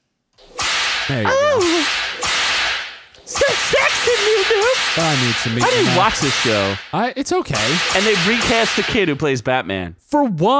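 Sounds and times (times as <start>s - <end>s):
sharp hissing whip cracks: 0.5s - 9.3s
wavering vocal exclamation: 1.1s - 1.9s, 3.3s - 6.8s
speech: 1.1s - 2.0s, 3.4s - 10.5s.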